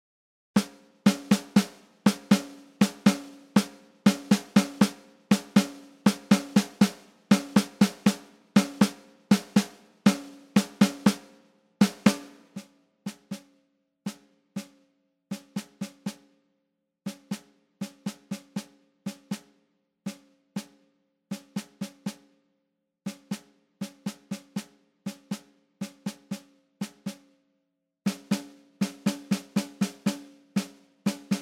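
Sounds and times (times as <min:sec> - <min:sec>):
snare drum at 120 bpm: 0:00.6 - 0:16.3, 0:17.1 - 0:22.3, 0:23.1 - 0:27.3, 0:28.1 - 0:31.3.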